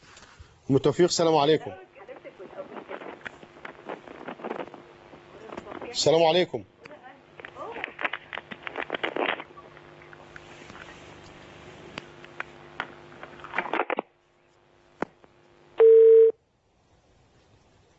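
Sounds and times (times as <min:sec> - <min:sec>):
crackling telephone line noise with clicks: 0:00.0 - 0:17.9
speech: 0:00.7 - 0:01.9, 0:06.0 - 0:06.7
telephone dial tone after a call disconnects: 0:15.8 - 0:16.3.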